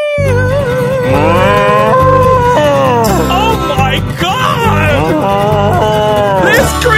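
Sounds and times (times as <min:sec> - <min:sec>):
constant low backing: 0:00.2 - 0:06.9
warbling shifting tones: 0:01.0 - 0:05.9
cow being milked mooing in a barn: 0:01.1 - 0:03.2.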